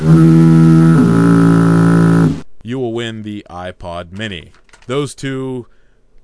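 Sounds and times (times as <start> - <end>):
loud deep foghorn blaring: 0.0 - 2.4
speech: 0.1 - 0.4, 3.7 - 5.8.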